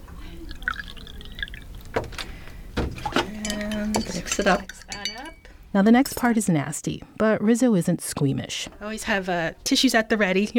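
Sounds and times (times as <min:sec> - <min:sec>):
distilled water poured into a neti pot holding salt: 0:00.0 - 0:01.8
water dripping: 0:00.0 - 0:05.4
speech: 0:04.0 - 0:04.8, 0:05.8 - 0:10.5.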